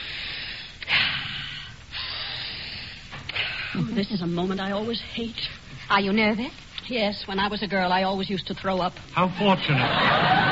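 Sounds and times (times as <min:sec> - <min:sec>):
person drawing deep breaths of fresh air: 0:00.0 - 0:03.9
speech: 0:03.8 - 0:10.5
laughter: 0:09.5 - 0:10.5.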